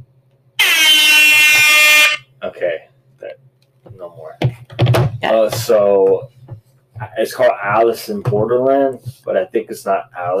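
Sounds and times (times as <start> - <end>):
air horn blast from a phone app: 0.6 - 2.3
speech: 5.2 - 6.4, 7.0 - 10.3.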